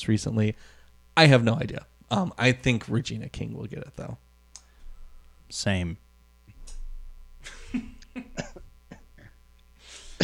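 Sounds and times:
speech: 0.0 - 4.2, 5.5 - 6.0, 7.4 - 8.6
person coughing harshly: 7.4 - 9.4, 10.0 - 10.2
throat clearing: 7.5 - 9.4, 10.0 - 10.2.

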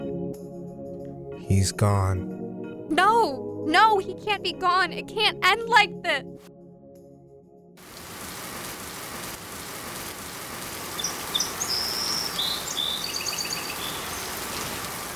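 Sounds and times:
speech: 1.5 - 6.6
steady rain falling: 7.8 - 15.1
faint bird chirps: 11.0 - 14.4.

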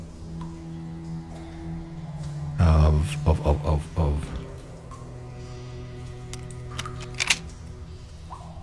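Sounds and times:
speech: 3.0 - 4.4
door lock being unlocked with sharp mechanical clicks: 6.4 - 7.4.

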